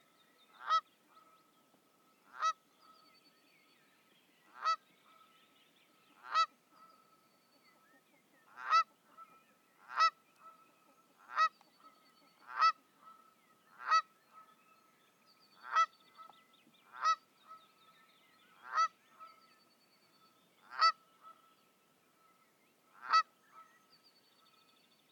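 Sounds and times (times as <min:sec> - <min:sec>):
Canada goose Branta canadensis: 0:00.6 - 0:01.4, 0:02.3 - 0:02.6, 0:06.2 - 0:06.9, 0:07.9 - 0:14.6, 0:15.6 - 0:16.3, 0:16.9 - 0:17.6, 0:18.6 - 0:19.4, 0:20.6 - 0:21.4, 0:23.0 - 0:23.8.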